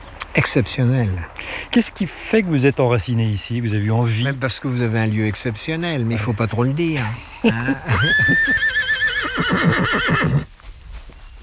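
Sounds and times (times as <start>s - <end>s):
speech: 0.4s - 10.5s
laughter: 6.1s - 9.5s
pregnant mare whinnying in a small meadow: 7.7s - 10.5s.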